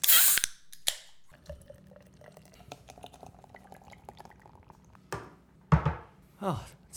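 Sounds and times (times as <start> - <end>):
Guinness can cracking open with a sharp hiss: 0.0 - 1.2
Guinness beer fizzing pour with frothy crackling: 0.0 - 5.1
speech: 6.4 - 6.9.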